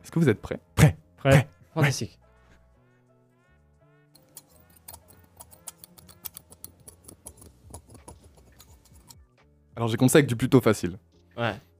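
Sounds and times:
speech: 0.0s - 2.2s, 9.8s - 11.7s
scissors cutting: 4.2s - 9.2s.

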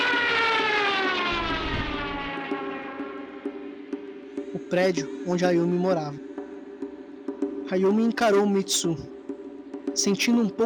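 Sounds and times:
airplane engine roaring overhead: 0.0s - 5.3s
speech: 4.7s - 6.3s, 7.7s - 9.1s, 10.0s - 10.6s.

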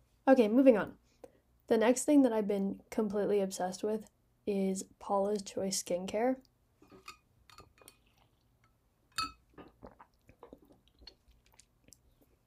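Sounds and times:
speech: 0.3s - 1.0s, 1.7s - 6.5s
person gulping a drink: 7.0s - 8.6s, 9.2s - 12.4s
lip smacks: 9.6s - 12.4s.

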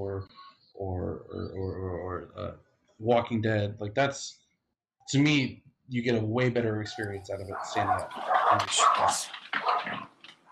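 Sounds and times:
speech: 0.2s - 4.4s, 5.1s - 10.0s
pack of dogs barking loudly: 6.9s - 10.5s.

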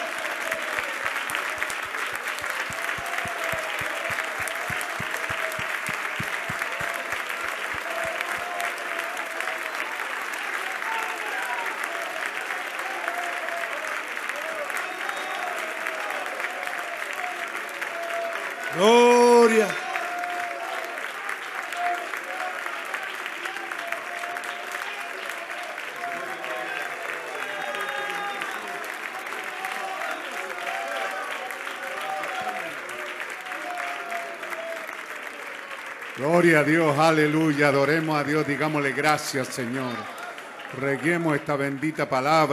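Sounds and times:
audience at a church worship service applauding loudly: 0.0s - 42.5s
speech: 36.2s - 40.2s, 40.8s - 42.5s.

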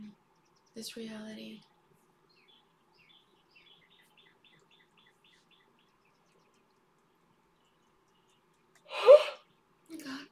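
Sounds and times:
speech: 0.8s - 1.7s
loud breathy yawn with a brief voiced groan: 8.9s - 9.4s.

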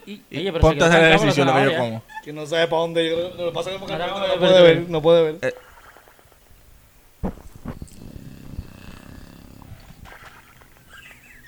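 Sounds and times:
speech: 0.1s - 5.7s
thump: 7.2s - 7.8s.

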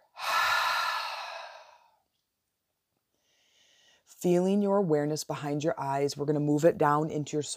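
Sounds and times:
slow deep breath during a guided breathing exercise: 0.0s - 2.0s, 3.1s - 4.1s
speech: 4.2s - 7.5s.

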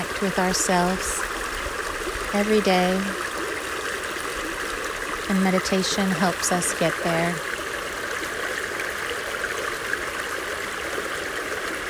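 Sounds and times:
flowing creek water: 0.0s - 11.8s
speech: 0.2s - 1.3s, 2.3s - 3.2s, 5.3s - 7.5s.

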